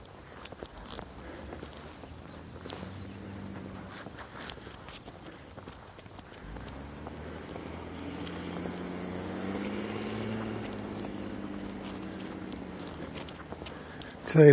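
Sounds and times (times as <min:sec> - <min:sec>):
recycling truck engine rumble and whine driving past: 0:00.0 - 0:14.5
speech: 0:14.3 - 0:14.5.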